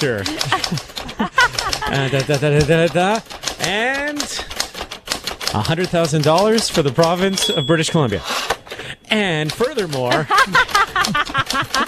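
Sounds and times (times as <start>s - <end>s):
speech: 0.0s - 0.9s, 1.9s - 4.4s, 5.5s - 8.5s, 9.1s - 11.8s
laughter: 0.0s - 3.0s, 9.7s - 11.8s
voice imitating old-fashioned typewriter typing: 0.0s - 11.8s.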